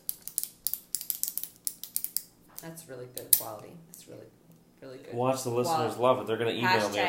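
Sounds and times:
retractable pen clicking: 0.0 - 3.5
speech: 2.6 - 7.0.

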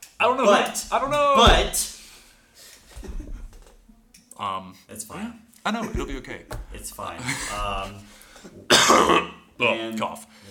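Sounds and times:
speech: 0.2 - 1.9, 4.4 - 10.4
harsh coughs from a person who was sick: 7.2 - 9.4.

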